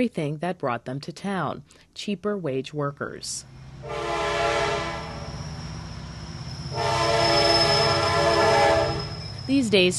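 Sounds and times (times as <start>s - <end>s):
speech: 0.0s - 4.3s, 9.5s - 9.9s
freight train rumbling through the center of a town: 3.4s - 9.9s
freight train horn blaring: 3.8s - 5.4s, 6.7s - 9.2s.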